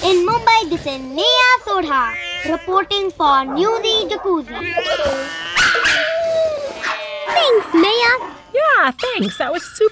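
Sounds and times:
speech: 0:00.5 - 0:06.1, 0:07.4 - 0:09.8
dog barking: 0:03.4 - 0:04.4, 0:05.5 - 0:06.2, 0:06.8 - 0:08.4
dog whimpering: 0:03.5 - 0:09.8.

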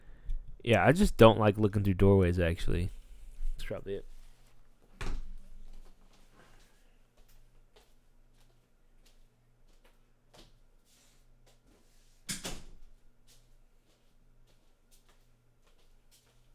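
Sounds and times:
speech: 0:00.6 - 0:03.0, 0:03.6 - 0:04.1
door shutting with a solid thud: 0:05.0 - 0:05.4.

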